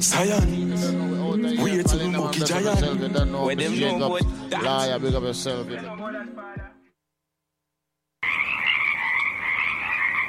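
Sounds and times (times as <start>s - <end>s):
speech: 0.0s - 6.7s
Pacific chorus frogs croaking in chorus in a marsh: 8.2s - 10.2s.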